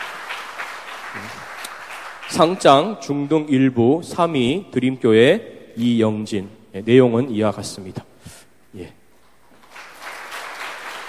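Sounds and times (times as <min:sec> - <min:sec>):
audience applauding at a church award ceremony: 0:00.0 - 0:02.7, 0:09.6 - 0:11.0
speech: 0:02.3 - 0:08.1, 0:08.7 - 0:09.0.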